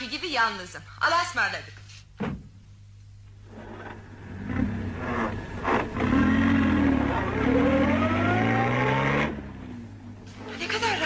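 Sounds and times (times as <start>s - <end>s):
speech: 0.3s - 2.4s
passenger car engine humming while moving: 3.4s - 11.0s.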